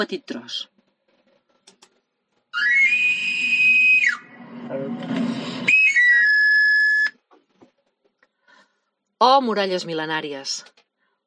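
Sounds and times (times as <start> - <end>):
speech: 0.0 - 0.7, 9.2 - 10.8
whistle of an itinerant knife grinder: 2.6 - 4.4, 5.6 - 7.2.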